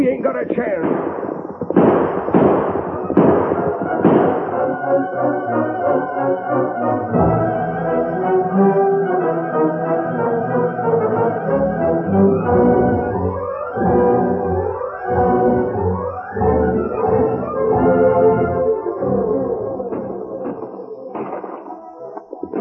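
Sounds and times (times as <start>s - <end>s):
gunshots: 0.0s - 6.1s, 19.6s - 22.5s
sustained musical passage: 2.0s - 21.4s.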